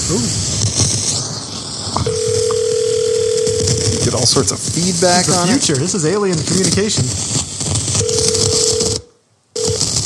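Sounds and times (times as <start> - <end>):
hissy crackling phone line on a recorded phone call: 0.0 - 10.0
speech: 0.1 - 0.8, 4.1 - 7.4
phone line click at start of recorded call: 2.1 - 4.0, 8.0 - 10.0
steady unbroken telephone dial tone: 2.1 - 4.1, 8.0 - 10.0.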